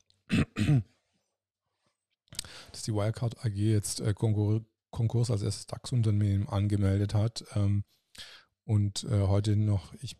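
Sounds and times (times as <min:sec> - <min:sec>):
man clearing throat: 0:00.3 - 0:00.9
man coughing: 0:00.3 - 0:00.9
speech: 0:00.6 - 0:00.9, 0:02.8 - 0:10.1.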